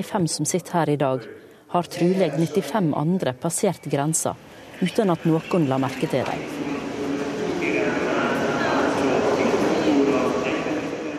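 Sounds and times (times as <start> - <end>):
speech: 0.0 - 6.7
faint indistinct voices: 4.3 - 11.1
passenger train rumbling on the way from Seger to Budapest, heard from inside the carriage: 4.4 - 11.1.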